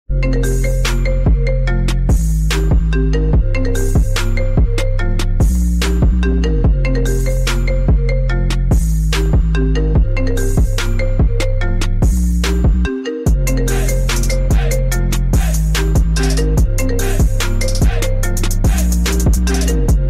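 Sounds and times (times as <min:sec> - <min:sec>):
phone ringtone: 0:00.1 - 0:20.0.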